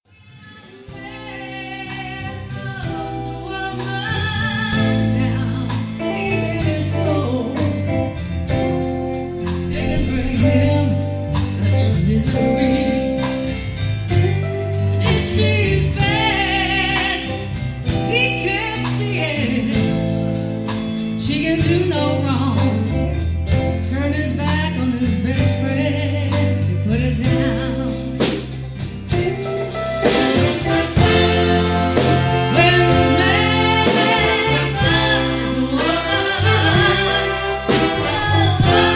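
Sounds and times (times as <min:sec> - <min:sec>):
wedding band playing: 0:00.8 - 0:38.9.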